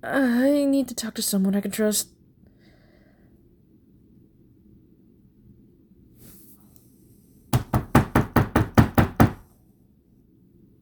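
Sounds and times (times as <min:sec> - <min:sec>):
speech: 0:00.0 - 0:02.2
knocking on a door: 0:07.5 - 0:09.4.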